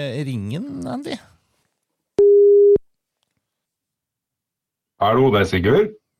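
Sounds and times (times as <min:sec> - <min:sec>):
speech: 0:00.0 - 0:01.3, 0:05.0 - 0:06.0
electronic telephone ringback tone while a call is being placed: 0:02.2 - 0:02.8.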